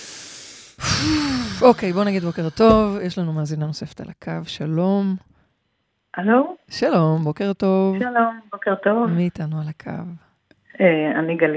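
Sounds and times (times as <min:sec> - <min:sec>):
deep breath with airy inhale and voiced exhale: 0:00.0 - 0:01.6
speech: 0:01.0 - 0:05.4, 0:06.1 - 0:10.2, 0:10.8 - 0:11.5.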